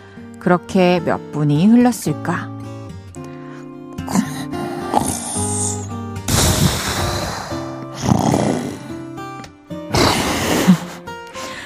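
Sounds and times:
quiet music bed: 0:00.0 - 0:11.6
speech: 0:00.4 - 0:02.5
man snoring asleep in a movie theater: 0:04.0 - 0:09.2, 0:09.9 - 0:11.0.

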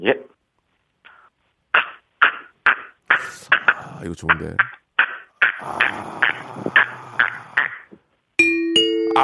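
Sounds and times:
speech: 0:00.0 - 0:00.3, 0:04.0 - 0:04.8, 0:05.6 - 0:06.2
person imitating narrow-mouthed toad calls: 0:02.7 - 0:07.9
two-note ding-dong chime: 0:08.4 - 0:09.2.

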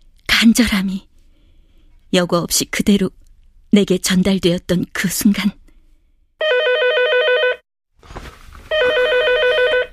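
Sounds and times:
speech: 0:00.4 - 0:01.1, 0:02.1 - 0:05.6
telephone bell ringing in trilling bursts: 0:06.4 - 0:07.6, 0:08.7 - 0:09.9.

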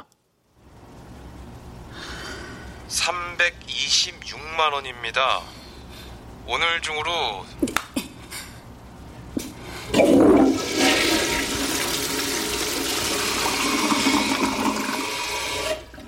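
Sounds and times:
speech: 0:02.9 - 0:05.6, 0:06.5 - 0:07.6
toilet flushing with a loud rush of water: 0:09.9 - 0:16.0.

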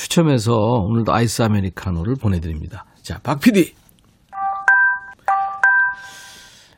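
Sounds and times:
speech: 0:00.2 - 0:03.8
text message notification electronic chime melody: 0:04.4 - 0:06.5.

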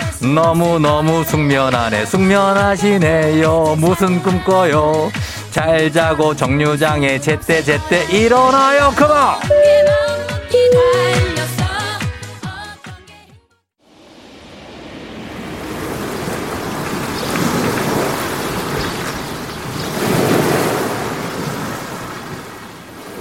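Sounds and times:
music: 0:00.0 - 0:13.7
speech: 0:00.2 - 0:11.1
ocean waves on a black-sand beach on Santorini Greece: 0:13.9 - 0:23.1.

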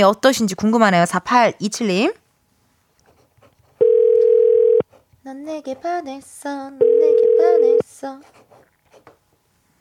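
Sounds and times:
speech: 0:00.0 - 0:02.2, 0:05.3 - 0:08.4
telephone ringback tone while placing a call: 0:03.8 - 0:04.8, 0:06.8 - 0:07.8.

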